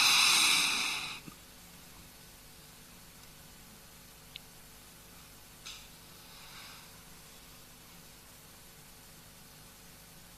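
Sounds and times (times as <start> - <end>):
big deep breath taken before chanting: 0.0 - 1.3, 6.1 - 7.3.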